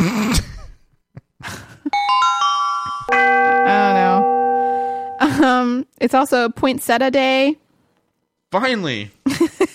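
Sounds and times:
doorbell chiming ding-dong: 2.0 - 5.5
speech: 6.0 - 7.6, 8.5 - 9.6.

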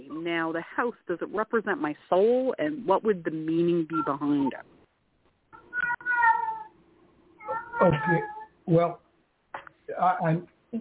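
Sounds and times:
speech: 0.0 - 4.8, 7.8 - 9.0, 9.9 - 10.8
cat meowing: 5.6 - 6.8, 7.4 - 8.5.

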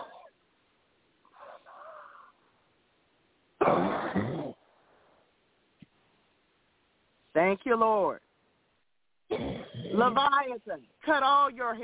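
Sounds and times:
person coughing forcefully: 3.6 - 4.6, 9.3 - 10.2
soft throaty hacking: 3.6 - 4.6
speech: 7.4 - 8.3, 9.3 - 11.8.

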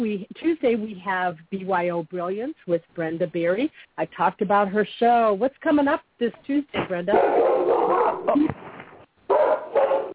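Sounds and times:
speech: 0.0 - 8.6
dog barking: 7.1 - 8.4, 9.3 - 10.1.

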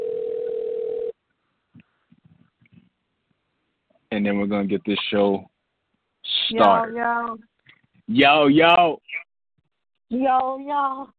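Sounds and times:
electronic phone ring tone as a call connects: 0.0 - 1.2
speech: 4.2 - 5.5, 6.2 - 7.5, 8.1 - 9.2, 10.1 - 11.1.

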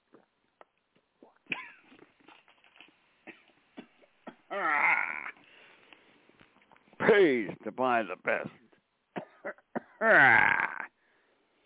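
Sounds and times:
speech: 7.1 - 8.6, 10.0 - 10.6
person coughing: 9.2 - 10.8.

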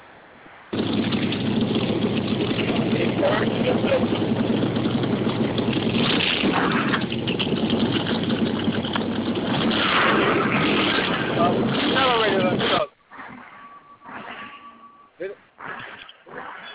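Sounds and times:
vehicle motor running: 0.7 - 12.7.

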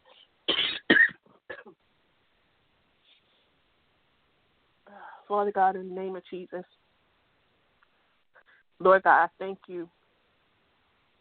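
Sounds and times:
speaker coughing during a sermon: 0.5 - 1.7
speech: 5.3 - 6.8, 8.8 - 10.0.

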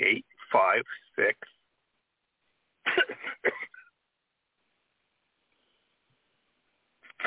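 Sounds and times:
speech: 0.7 - 1.5
person coughing harshly: 2.9 - 3.8.

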